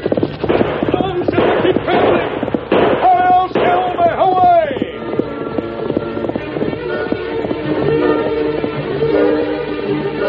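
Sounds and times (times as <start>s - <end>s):
bangs: 0.0s - 9.1s
hooves galloping: 0.0s - 10.2s.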